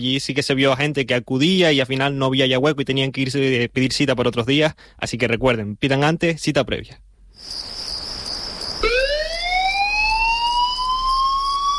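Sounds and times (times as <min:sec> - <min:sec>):
speech: 0:00.0 - 0:07.8
constant hiss: 0:00.0 - 0:11.7
electronic emergency alert alarm tone for a fire brigade: 0:07.6 - 0:11.7.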